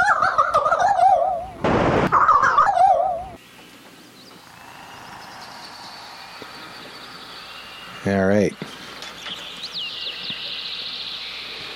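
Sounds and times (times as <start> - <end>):
birds chirping in high descending whistles: 0.0 - 11.7
steady high-pitched hum of outdoor noise: 0.0 - 11.7
speech: 8.1 - 8.8.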